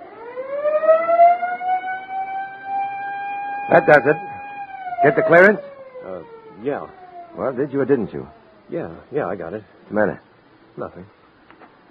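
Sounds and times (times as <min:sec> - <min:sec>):
siren being tested, winding up to a wail: 0:00.0 - 0:08.8
speech: 0:03.7 - 0:04.3, 0:05.0 - 0:11.2.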